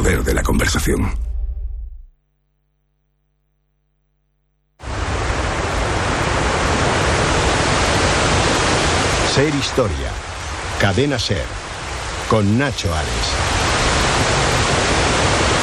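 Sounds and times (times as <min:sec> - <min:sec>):
speech: 0:00.2 - 0:01.3, 0:09.4 - 0:10.2, 0:10.8 - 0:11.6, 0:12.3 - 0:13.6
flowing water rushing: 0:04.8 - 0:15.6.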